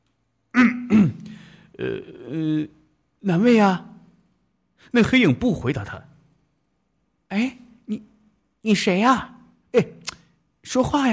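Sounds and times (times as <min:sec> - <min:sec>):
person giving a dry voiced throat clearing: 0:00.5 - 0:02.7
speech: 0:01.8 - 0:03.9, 0:04.9 - 0:06.1, 0:08.6 - 0:10.0, 0:10.7 - 0:11.1.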